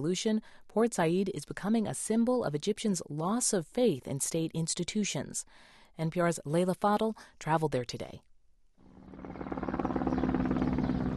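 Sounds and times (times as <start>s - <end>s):
speech: 0.0s - 8.3s
helicopters buzzing overhead in Port Said Egypt: 9.0s - 11.1s.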